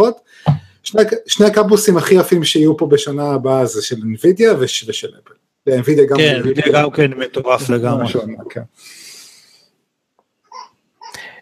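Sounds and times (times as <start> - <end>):
speech: 0.0 - 9.0
breathy hiss: 8.7 - 9.7
baby whimpering and crying: 10.4 - 11.3.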